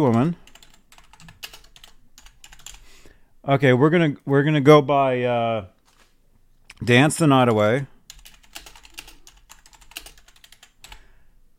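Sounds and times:
speech: 0.0s - 0.4s, 3.4s - 5.7s, 6.8s - 7.9s
rapid computer keyboard typing: 0.1s - 2.9s, 8.0s - 11.0s.

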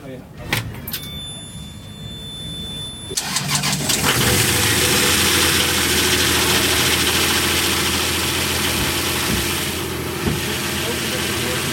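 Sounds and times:
60 horsepower Nanni diesel boat engine idling: 3.2s - 11.7s.

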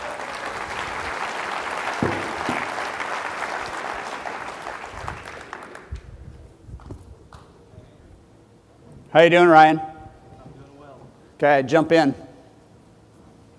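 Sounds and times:
audience applauding: 0.0s - 6.2s
speech: 9.2s - 9.9s, 11.4s - 12.2s.

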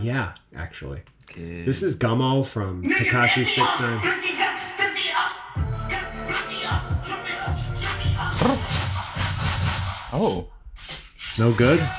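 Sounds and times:
speech: 0.0s - 4.6s, 10.1s - 10.6s, 11.4s - 11.9s
loud rap track with booming bass: 3.0s - 10.4s.

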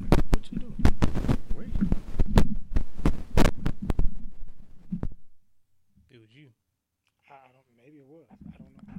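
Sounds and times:
loud crackling static with sharp pops: 0.0s - 5.4s, 8.3s - 8.9s.

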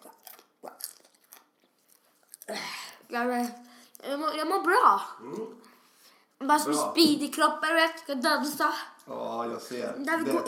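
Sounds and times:
crunchy chewing of popcorn: 0.0s - 4.2s
speech: 2.5s - 5.6s, 6.4s - 10.4s.

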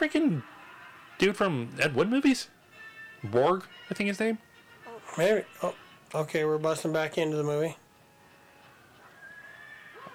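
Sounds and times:
speech: 0.0s - 0.6s, 1.2s - 2.6s, 3.2s - 4.5s, 5.1s - 7.8s
horse neighing in a high wavering whinny: 9.2s - 10.1s.

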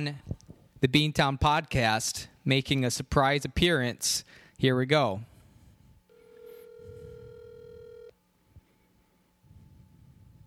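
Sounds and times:
speech: 0.0s - 5.3s
phone line ringback tone on an outgoing call: 6.1s - 8.2s.

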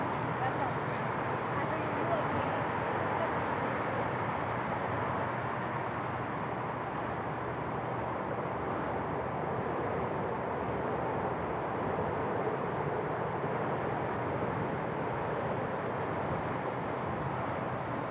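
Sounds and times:
dense traffic roar on a busy bridge above a pier: 0.0s - 18.0s.

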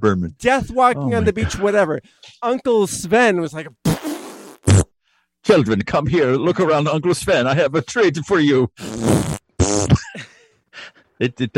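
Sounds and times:
speech: 0.0s - 3.8s, 5.4s - 10.3s, 11.2s - 11.5s
loud sputtering farts: 3.8s - 4.9s, 8.8s - 10.0s.

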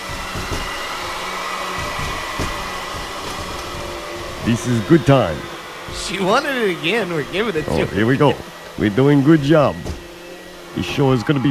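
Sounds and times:
soft bumps and knocks of vacuum cleaner moving: 0.0s - 6.5s, 7.3s - 10.2s
vacuum cleaner running on carpet: 0.0s - 11.4s
speech: 4.4s - 9.9s, 10.8s - 11.4s.

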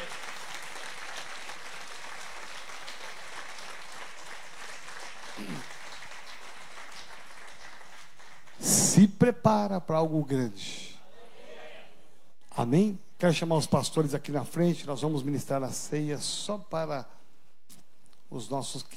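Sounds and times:
crowd applauding: 0.0s - 8.6s
speech: 9.0s - 10.8s, 12.6s - 17.2s, 18.3s - 18.9s.

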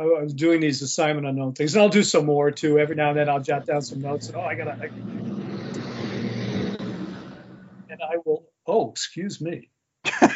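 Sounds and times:
speech: 0.0s - 5.4s, 8.2s - 10.3s
loud truck driving by: 1.8s - 8.2s.

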